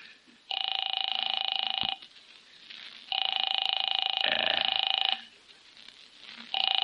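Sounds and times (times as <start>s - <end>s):
old telephone ringing as a call is placed: 0.5s - 2.0s, 3.1s - 5.3s, 6.5s - 6.8s.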